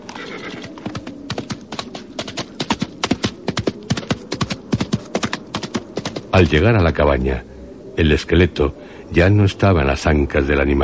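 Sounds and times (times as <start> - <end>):
horse whinny: 0.0 - 1.0
horse galloping: 0.0 - 6.6
speech: 6.4 - 10.8.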